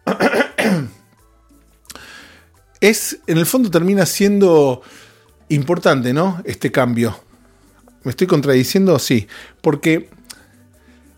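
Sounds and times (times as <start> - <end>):
person coughing: 0.0 - 1.0
person clearing throat: 0.0 - 1.1
speech: 2.8 - 7.2, 8.0 - 10.2.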